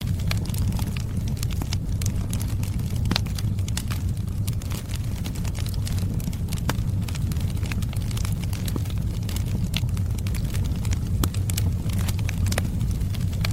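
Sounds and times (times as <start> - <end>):
fireplace crackling: 0.0 - 13.5.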